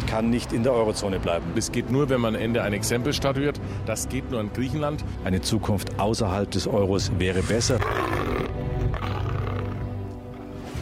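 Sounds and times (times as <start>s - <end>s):
speech: 0.1s - 8.6s
lion roaring: 7.4s - 10.0s.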